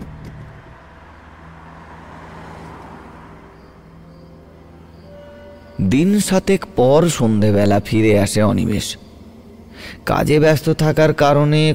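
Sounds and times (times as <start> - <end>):
car engine starting and driving off with low rumble: 0.0 - 11.5
broadband road noise: 0.0 - 11.7
thin whining tones: 3.3 - 7.0
speech: 5.8 - 9.0, 9.8 - 11.7.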